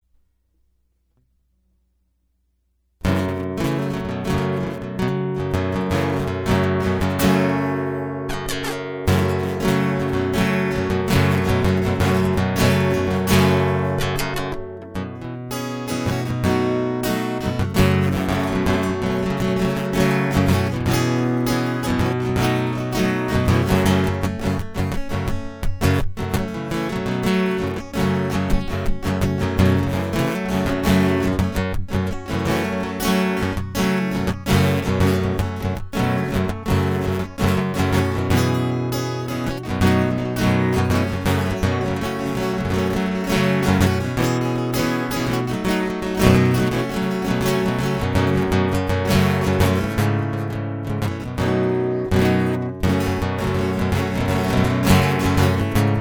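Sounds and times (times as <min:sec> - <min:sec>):
guitar loop: 0:03.0 - 0:55.9.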